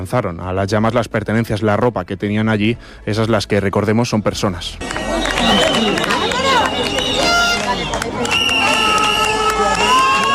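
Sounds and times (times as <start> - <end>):
speech: 0.0 - 6.0
dense crowd of protesters shouting and cheering: 4.8 - 10.3
sharp whistle-like cries: 5.0 - 10.3.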